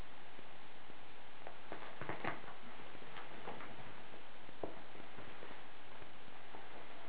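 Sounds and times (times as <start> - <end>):
footsteps: 1.4 - 7.0.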